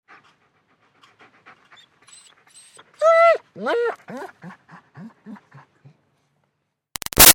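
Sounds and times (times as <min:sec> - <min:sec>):
German Shepherd dog panting: 0:00.0 - 0:03.0, 0:04.0 - 0:06.0
German Shepherd dog whining: 0:01.8 - 0:05.6.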